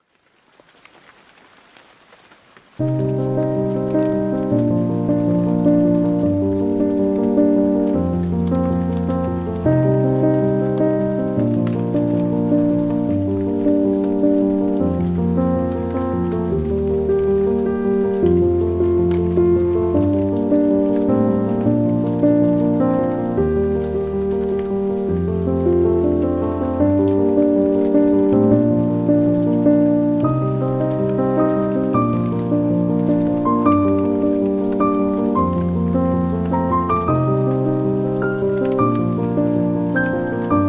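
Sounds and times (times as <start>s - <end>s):
rain: 0.0s - 40.6s
calming piano music: 2.7s - 40.6s.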